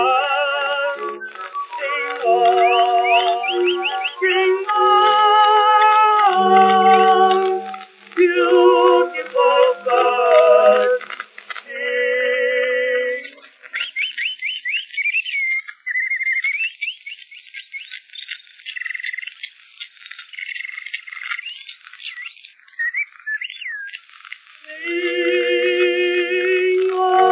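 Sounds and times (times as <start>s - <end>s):
low tonal bird sounds: 0.0s - 11.2s, 12.2s - 27.3s
bird song: 0.9s - 4.5s, 13.6s - 24.1s.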